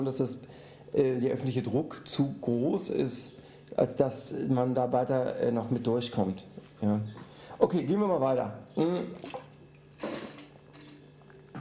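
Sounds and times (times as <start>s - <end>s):
speech: 0.0s - 9.4s
faint steady hum: 0.0s - 11.6s
person sipping water: 9.1s - 11.5s.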